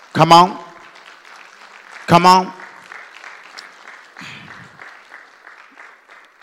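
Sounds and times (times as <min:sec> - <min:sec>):
crowd clapping: 0:00.0 - 0:06.4
speech: 0:00.1 - 0:00.6, 0:02.1 - 0:02.6
crowd cheering: 0:01.4 - 0:06.4.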